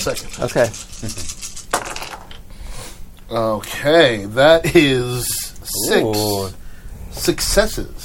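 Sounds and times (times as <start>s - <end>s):
speech: 0.0s - 1.5s, 3.3s - 6.6s, 7.2s - 8.0s
dice thrown onto a table during a tabletop role-playing game: 1.2s - 2.4s.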